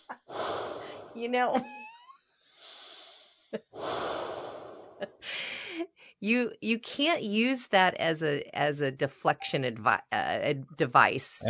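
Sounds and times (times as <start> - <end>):
heavy anxious ragged breathing with gasps: 0.2 - 1.2, 2.6 - 5.8
speech: 1.2 - 1.8, 3.5 - 4.1, 6.2 - 11.4.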